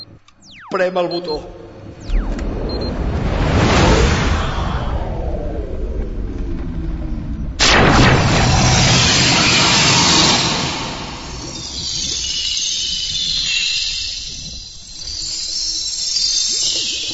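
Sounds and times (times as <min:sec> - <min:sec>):
speech: 0:00.7 - 0:01.6
rising whooshing swell of noise: 0:01.6 - 0:15.7
loud broadband explosion blast rumbling: 0:01.9 - 0:14.7.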